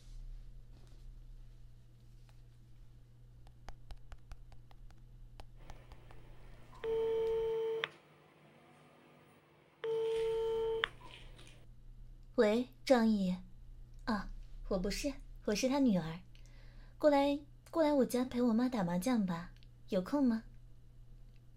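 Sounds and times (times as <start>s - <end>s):
hum: 0.0s - 21.5s
electronic ringback tone on a mobile phone line: 6.8s - 7.9s, 9.8s - 11.2s
speech: 12.4s - 13.4s, 14.7s - 16.3s, 17.0s - 20.5s.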